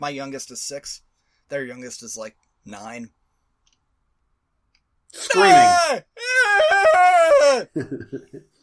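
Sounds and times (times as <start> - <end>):
speech: 0.0 - 3.2, 5.1 - 8.5
older neighbor children screaming outside in the yard: 5.3 - 7.7.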